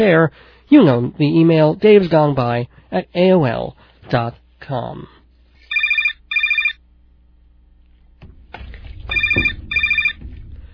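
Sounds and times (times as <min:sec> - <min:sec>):
speech: 0:00.0 - 0:05.2
telephone ringing with warbling electronic trills: 0:05.7 - 0:06.8, 0:09.1 - 0:10.2
rumbling noise: 0:07.4 - 0:10.7
clunk: 0:08.2 - 0:10.7.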